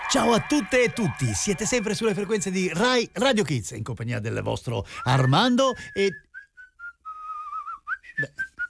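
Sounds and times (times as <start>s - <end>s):
speech: 0.1s - 6.3s
person whistling a bright melody: 4.9s - 8.6s.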